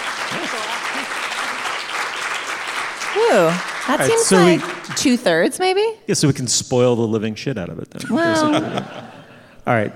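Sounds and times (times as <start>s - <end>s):
audience applause: 0.0s - 5.3s
laughter: 0.3s - 1.7s, 4.0s - 4.8s, 8.0s - 9.6s
speech: 3.2s - 9.9s.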